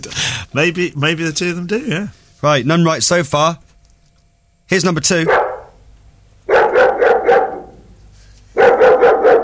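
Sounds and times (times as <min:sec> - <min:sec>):
speech: 0:00.0 - 0:03.6, 0:04.7 - 0:05.4
large Alsatian dog barking deeply: 0:05.2 - 0:05.8, 0:06.5 - 0:07.9, 0:08.6 - 0:09.4.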